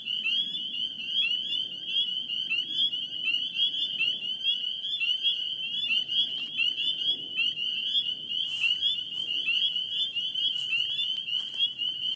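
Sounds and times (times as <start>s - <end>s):
spring peepers peeping in a dense chorus in Maryland: 0.0s - 12.1s.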